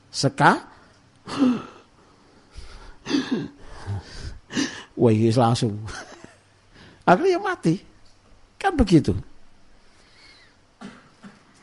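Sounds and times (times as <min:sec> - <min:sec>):
speech: 0:00.1 - 0:00.7, 0:01.3 - 0:01.7, 0:03.1 - 0:06.1, 0:07.1 - 0:07.9, 0:08.6 - 0:09.3
person imitating the labored gasping breaths of a panicking COVID patient: 0:01.3 - 0:01.9, 0:02.5 - 0:05.0.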